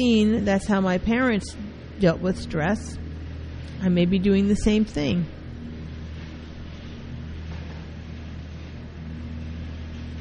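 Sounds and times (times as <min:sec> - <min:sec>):
speech: 0:00.0 - 0:03.0, 0:03.8 - 0:05.4
leaf truck grinding as it picks up leaves on a street: 0:00.0 - 0:10.1.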